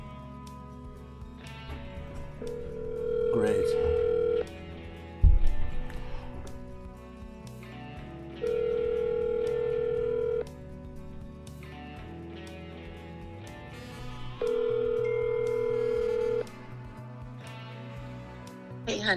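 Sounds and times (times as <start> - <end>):
phone ringback tones through an earpiece: 2.4 - 4.9, 8.3 - 10.6, 14.3 - 16.8
thump: 5.2 - 5.7.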